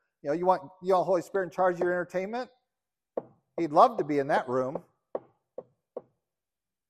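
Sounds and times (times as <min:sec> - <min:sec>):
speech: 0:00.2 - 0:02.6, 0:03.2 - 0:04.9
knocking on a door: 0:05.1 - 0:06.2.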